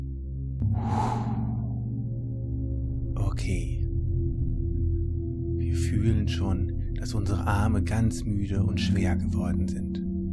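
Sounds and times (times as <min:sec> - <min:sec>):
low steady drone: 0:00.0 - 0:10.3
deep breath in and out: 0:00.6 - 0:02.3
speech: 0:06.0 - 0:10.0.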